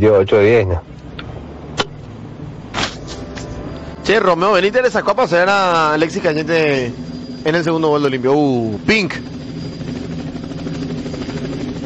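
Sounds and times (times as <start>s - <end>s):
speech: 0.0s - 0.9s, 4.1s - 9.3s
helicopter engine and rotor hum in a played recording: 1.0s - 11.8s.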